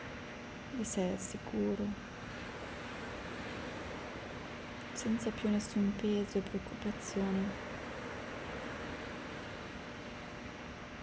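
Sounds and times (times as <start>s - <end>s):
speech: 0.7s - 2.1s, 5.0s - 7.7s
steady soft wash of ocean surf: 2.2s - 11.0s.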